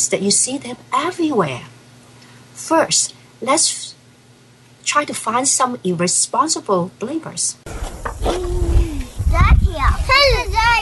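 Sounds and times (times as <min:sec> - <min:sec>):
speech: 0:00.0 - 0:01.8, 0:02.6 - 0:04.0, 0:04.9 - 0:08.0
children shouting and squealing in an elementary school playground: 0:08.2 - 0:10.8.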